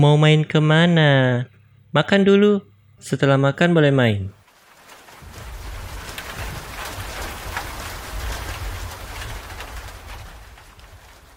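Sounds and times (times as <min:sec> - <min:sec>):
speech: 0:00.0 - 0:04.4
steady rain falling: 0:04.4 - 0:11.3.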